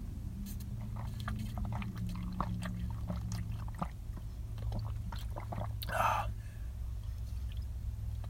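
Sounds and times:
steady low hum: 0:00.0 - 0:08.2
person chugging a glass of water: 0:00.8 - 0:06.4
breathy gasp: 0:05.9 - 0:06.7.

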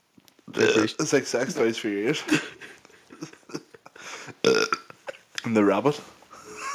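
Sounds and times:
burp into the microphone: 0:00.5 - 0:01.0, 0:04.4 - 0:04.9
speech: 0:00.6 - 0:02.7, 0:05.5 - 0:06.2
soft throaty gulps and croaks: 0:04.4 - 0:05.4.

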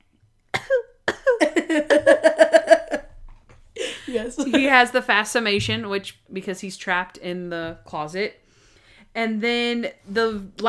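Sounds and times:
man making exaggerated fake cough: 0:00.6 - 0:03.0
laughter: 0:01.2 - 0:03.1, 0:03.8 - 0:05.0
speech: 0:04.4 - 0:08.4, 0:09.2 - 0:10.6.

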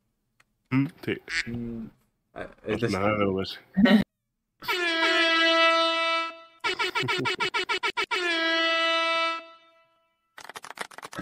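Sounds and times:
speech: 0:00.7 - 0:04.0
soundboard air horn sound effect: 0:04.6 - 0:10.2.

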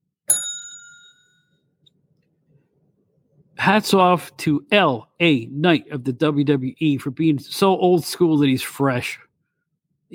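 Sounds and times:
single bright bell ding: 0:00.3 - 0:01.6
speech: 0:03.6 - 0:09.2.

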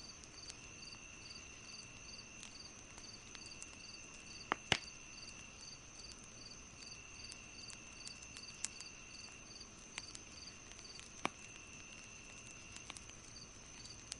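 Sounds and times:
crickets chirping at night after sunset: 0:00.0 - 0:14.1
wood fire crackling and popping: 0:00.0 - 0:14.1.

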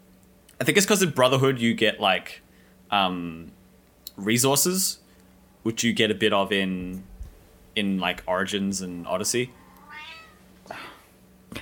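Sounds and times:
speech: 0:00.6 - 0:05.0, 0:05.6 - 0:07.1, 0:07.8 - 0:09.6, 0:10.7 - 0:10.9
cat meowing: 0:09.6 - 0:10.5.

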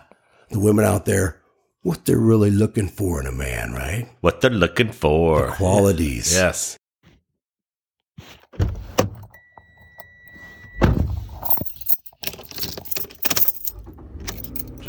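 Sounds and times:
speech: 0:00.5 - 0:06.8
keys jangling: 0:11.3 - 0:14.8.

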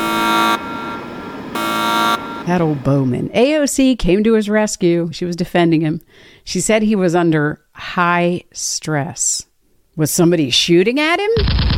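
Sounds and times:
fire alarm ringing: 0:00.0 - 0:02.8
speech: 0:02.4 - 0:11.7.

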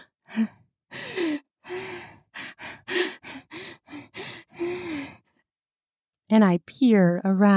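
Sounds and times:
rapid gasping breaths: 0:00.2 - 0:05.4
speech: 0:00.4 - 0:00.6, 0:06.3 - 0:07.5.

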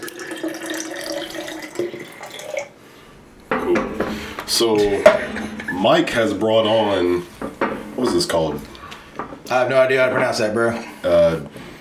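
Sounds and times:
water pouring into a cup: 0:00.0 - 0:02.8
speech: 0:01.8 - 0:02.0, 0:04.5 - 0:07.3, 0:08.0 - 0:08.7, 0:09.5 - 0:11.6.

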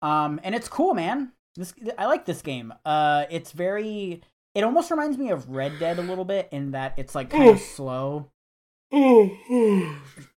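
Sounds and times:
speech: 0:00.0 - 0:08.3, 0:08.9 - 0:10.3
voiced yawn: 0:05.6 - 0:06.2, 0:08.9 - 0:10.3.

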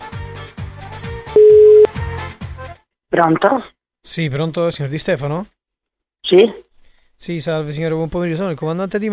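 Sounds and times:
telephone ringing tone on a call: 0:01.4 - 0:01.9
speech: 0:03.2 - 0:05.6, 0:06.2 - 0:09.1.

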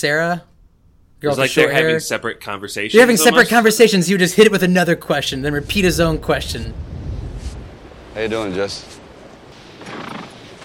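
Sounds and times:
speech: 0:00.0 - 0:00.5, 0:01.2 - 0:06.9, 0:08.2 - 0:09.0
horse neighing: 0:09.8 - 0:10.4.

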